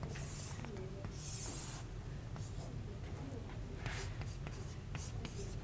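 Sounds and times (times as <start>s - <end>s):
pen handwriting during a lecture: 0.2s - 2.6s, 3.8s - 5.4s.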